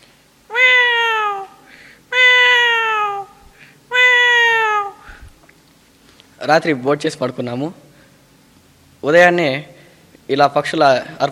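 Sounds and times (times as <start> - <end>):
cat meowing: 0.5 - 5.3
speech: 6.4 - 7.9, 9.0 - 9.7, 10.3 - 11.3.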